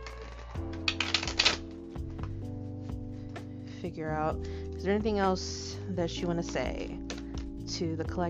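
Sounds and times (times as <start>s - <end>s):
tarot cards being shuffled: 0.0s - 2.4s
soft sustained musical drone: 0.0s - 8.2s
speech: 3.8s - 7.0s, 7.7s - 8.2s.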